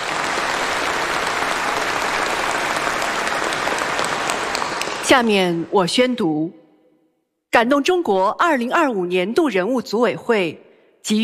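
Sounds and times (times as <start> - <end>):
large audience applauding at an awards ceremony: 0.0 - 5.3
speech: 5.1 - 6.6, 7.6 - 11.2.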